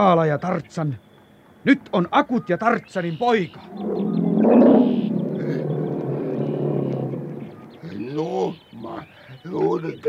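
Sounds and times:
speech: 0:00.0 - 0:05.5, 0:09.4 - 0:10.0
lion roaring: 0:03.6 - 0:08.2.

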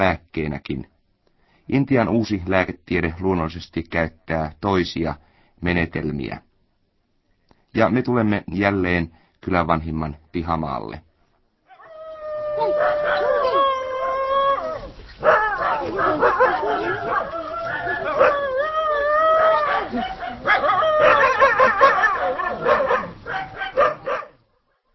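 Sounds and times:
speech: 0:00.0 - 0:00.9, 0:01.7 - 0:06.5, 0:07.7 - 0:11.1
dogs tied to a post in a yard howling and barking: 0:11.7 - 0:24.4.

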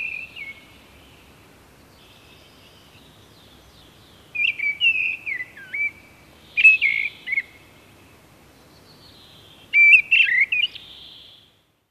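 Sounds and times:
Mistle Thrush giving whistled and warbling notes: 0:04.4 - 0:07.6, 0:09.7 - 0:11.4.

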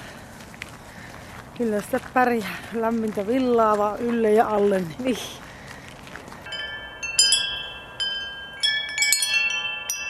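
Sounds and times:
speech: 0:01.6 - 0:05.4
metallic wind chimes tinkling: 0:06.4 - 0:10.0.

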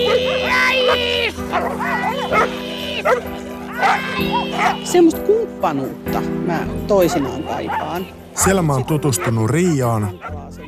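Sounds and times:
dogs high whimpering: 0:00.0 - 0:05.1, 0:06.9 - 0:08.2, 0:09.0 - 0:10.6
several dogs barking and yipping in a suburban dog park in Roihuvuori: 0:00.0 - 0:10.6
speech: 0:00.9 - 0:10.6.

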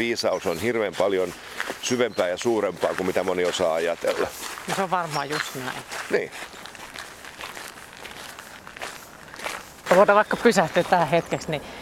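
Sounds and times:
speech: 0:00.0 - 0:06.6, 0:09.9 - 0:11.7
footsteps of people walking outdoors on Seurasaari: 0:00.0 - 0:11.6.

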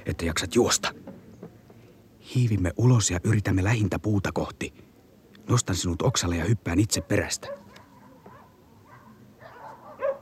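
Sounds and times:
speech: 0:00.1 - 0:01.1, 0:02.3 - 0:04.8, 0:05.5 - 0:07.6
dogs barking: 0:06.9 - 0:10.1
soft dog yelping: 0:06.9 - 0:10.1.

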